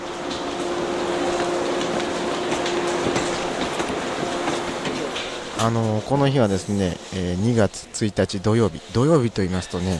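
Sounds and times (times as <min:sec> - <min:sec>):
train rhythmic wheel clatter: 0:00.0 - 0:06.9
train arriving at a station platform in Japan: 0:00.0 - 0:07.9
speech: 0:05.6 - 0:09.9.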